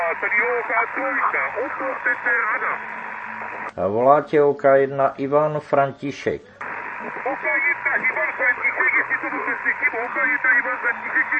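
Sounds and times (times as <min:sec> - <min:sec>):
steady narrow hiss of amateur radio band static received in a house: 0:00.0 - 0:03.7, 0:06.6 - 0:11.3
speech: 0:00.2 - 0:11.3
garbled warbling voice-like fragments in amateur radio band interference: 0:07.0 - 0:11.3.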